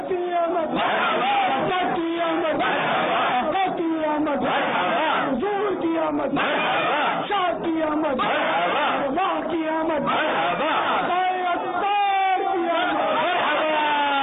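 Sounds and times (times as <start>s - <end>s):
large crowd chanting responses in unison to religious slogans: 0.0s - 14.2s
leader calling out religious slogans: 0.0s - 14.2s.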